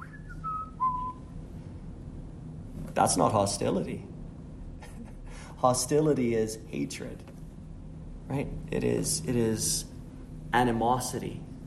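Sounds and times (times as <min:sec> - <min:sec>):
person whistling a gliding downward run of clear notes: 0:00.0 - 0:01.2
low hum: 0:00.0 - 0:11.6
speech: 0:03.0 - 0:04.1, 0:05.6 - 0:07.3, 0:08.3 - 0:09.9, 0:10.5 - 0:11.5.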